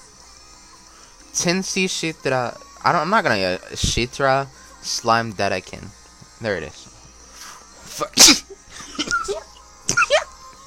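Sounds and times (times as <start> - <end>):
speech: 1.4 - 6.9, 8.0 - 9.5
person sneezing: 8.2 - 10.3.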